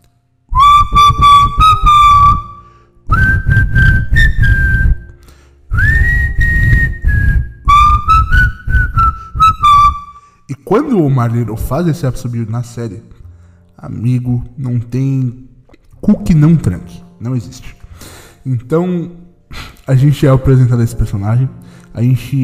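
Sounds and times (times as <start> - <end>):
person whistling a short melodic tune: 0.5 - 10.4
speech: 10.7 - 13.2, 13.8 - 15.4, 16.0 - 22.4.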